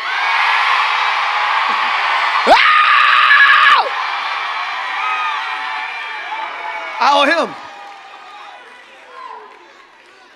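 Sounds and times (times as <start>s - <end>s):
large church audience screaming and shouting: 0.0s - 10.0s
speech: 7.0s - 7.6s.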